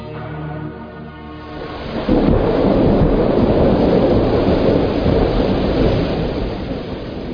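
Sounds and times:
heavy rain from a storm in a radio drama: 0:00.3 - 0:07.3
rolling thunder from a storm in a radio drama: 0:01.4 - 0:07.3.

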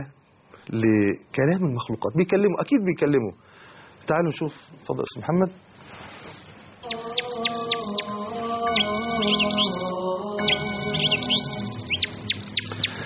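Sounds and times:
speech: 0:00.0 - 0:06.1, 0:09.2 - 0:09.6
birds chirping: 0:06.7 - 0:13.0.

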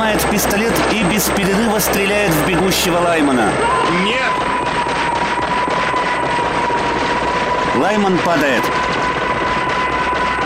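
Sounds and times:
helicopter rotor and engine roar during a film action scene: 0:00.0 - 0:10.4
thin steady helicopter whine: 0:00.0 - 0:10.4
speech: 0:00.1 - 0:04.8, 0:07.8 - 0:08.8.

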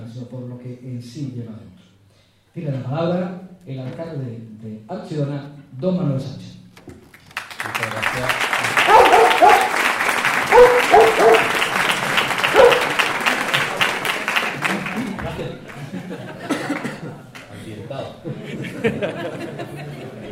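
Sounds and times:
speech: 0:00.2 - 0:01.9, 0:02.6 - 0:06.5
audience clapping at the opening ceremony of a dog fair: 0:07.0 - 0:17.5
people chuckling: 0:08.3 - 0:20.2.

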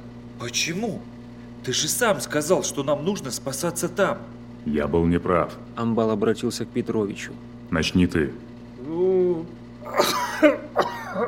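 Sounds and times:
speech: 0:00.4 - 0:11.2
old man's dry racking cough: 0:09.9 - 0:11.2.

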